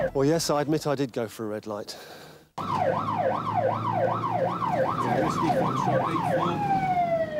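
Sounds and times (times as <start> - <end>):
speech: 0.2 - 6.8
low car engine rumble: 2.6 - 7.3
police car siren wailing: 2.6 - 7.3.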